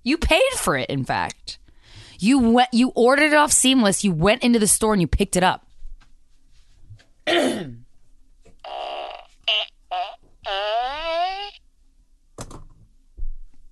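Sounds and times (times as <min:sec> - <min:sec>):
speech: 0:00.0 - 0:01.6, 0:02.2 - 0:05.7
buzzy pitched farts: 0:08.6 - 0:11.6.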